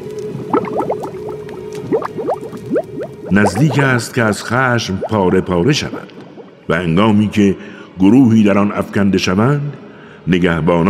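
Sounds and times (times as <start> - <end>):
thick liquid boiling and bubbling: 0.0 - 6.7
speech: 3.3 - 10.8.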